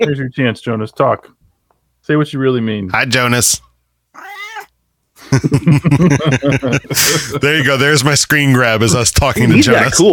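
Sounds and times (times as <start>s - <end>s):
speech: 0.0s - 1.4s, 2.0s - 4.4s, 5.3s - 10.1s
Bengal cat meowing: 4.2s - 4.7s
laughter: 5.2s - 8.2s.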